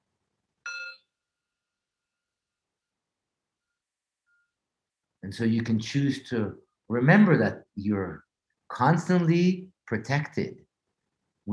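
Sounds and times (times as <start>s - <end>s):
meditation bell struck with a bright clear ring: 0.7s - 1.0s
speech: 5.3s - 10.6s.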